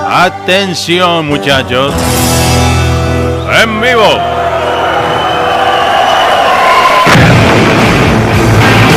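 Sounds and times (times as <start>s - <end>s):
crowd roaring and cheering: 0.0s - 8.9s
speech: 0.1s - 2.7s, 3.6s - 4.4s
fireworks and smoke bombs booming and crackling: 7.0s - 8.9s.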